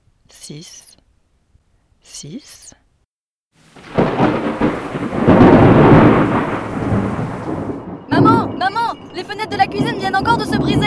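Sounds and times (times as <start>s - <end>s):
speech: 0.5s - 1.0s, 2.1s - 2.8s, 8.6s - 10.8s
steady rain: 3.6s - 10.8s
deep rolling rumble of thunder: 3.8s - 10.8s.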